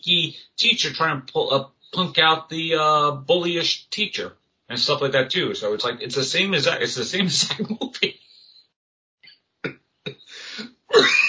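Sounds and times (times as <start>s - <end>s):
speech: 0.0s - 8.1s
person coughing with a rough throat after laughing: 10.1s - 11.2s.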